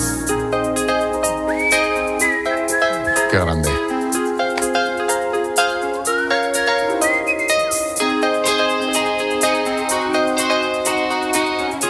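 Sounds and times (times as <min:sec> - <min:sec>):
bright whistled melody in a rock song: 0:00.0 - 0:11.8
speech: 0:03.3 - 0:03.7.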